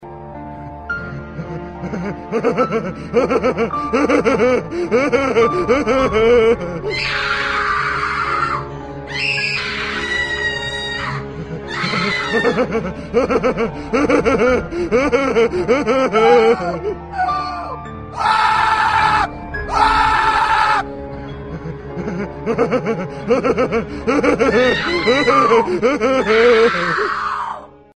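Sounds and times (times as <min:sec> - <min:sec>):
people laughing: 0:01.2 - 0:06.8, 0:11.2 - 0:17.6, 0:21.5 - 0:27.1
people screaming: 0:05.9 - 0:12.8, 0:15.9 - 0:20.9, 0:24.2 - 0:27.7.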